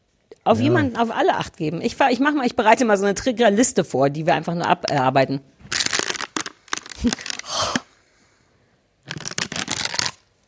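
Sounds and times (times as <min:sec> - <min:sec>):
speech: 0:00.5 - 0:05.5, 0:07.0 - 0:07.3
paper rustling and crinkling: 0:05.6 - 0:07.4, 0:09.1 - 0:10.4.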